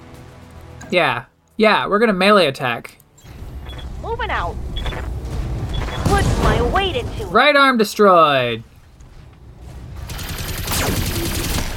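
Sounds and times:
speech: 0.9 - 3.0, 4.0 - 5.1, 6.1 - 8.7
machine gun fire in a mech combat video game: 10.1 - 11.7.

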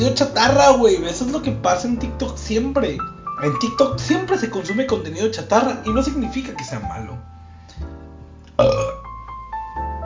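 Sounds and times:
speech: 0.0 - 7.9, 8.6 - 8.9
deep rumbling burp: 8.5 - 9.0
soft guttural sounds: 8.6 - 9.0.

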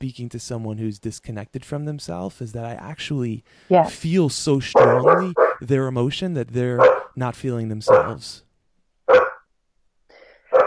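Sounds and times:
speech: 0.0 - 8.5
dog barking: 4.8 - 5.6, 6.8 - 7.2, 7.9 - 8.2, 9.1 - 9.4
dog whining: 4.8 - 5.6, 7.9 - 8.2.

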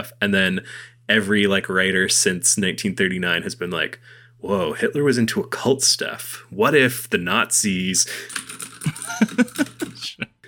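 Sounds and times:
speech: 0.0 - 10.3
rapid furious typing on a computer keyboard: 8.2 - 10.0
laughter: 8.8 - 10.3.

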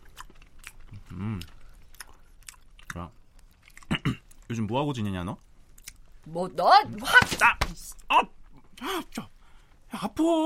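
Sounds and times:
chewing and biting on pizza: 0.0 - 6.0
speech: 1.2 - 1.6, 3.0 - 3.2, 4.5 - 5.5, 6.2 - 10.4.

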